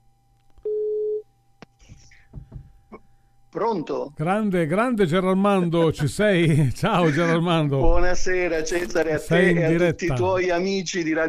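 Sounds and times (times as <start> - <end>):
outgoing call ringback tone beep: 0.6 - 1.2
speech: 3.6 - 11.2.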